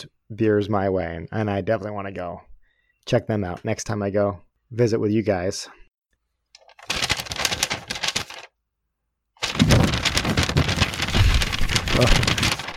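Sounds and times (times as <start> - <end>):
speech: 0.0 - 2.5, 3.1 - 5.8, 12.0 - 12.2
paper rustling while sorting mail: 6.6 - 8.5, 9.4 - 12.7.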